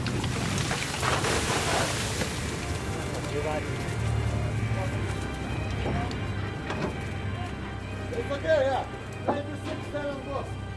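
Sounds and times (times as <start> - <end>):
splashy rustling bursts: 0.0 - 4.7
boat engine rumble: 0.0 - 10.7
fishing net being hauled aboard a boat: 0.0 - 10.7.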